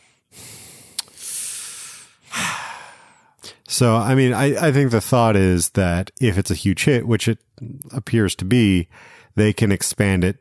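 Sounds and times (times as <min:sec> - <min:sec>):
heavy hoarse breathing through a mask: 0:00.0 - 0:03.6
speech: 0:03.8 - 0:10.3.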